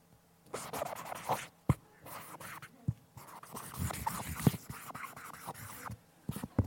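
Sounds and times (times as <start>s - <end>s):
pen scratching across paper writing a signature: 0.6s - 1.5s, 2.1s - 6.6s
sharp pen taps: 3.6s - 6.6s.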